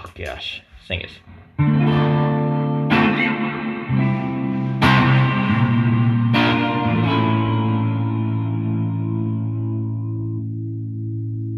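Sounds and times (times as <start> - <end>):
speech: 0.2 - 1.4
sustained guitar chords through an arena reverb pedal: 1.4 - 11.5.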